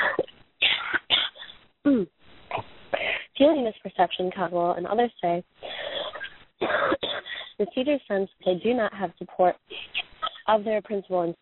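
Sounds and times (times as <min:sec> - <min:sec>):
harsh abrupt coughs in a coughing fit: 0:00.0 - 0:01.5, 0:05.8 - 0:07.6
speech: 0:03.4 - 0:05.7, 0:07.6 - 0:09.7, 0:10.5 - 0:11.4.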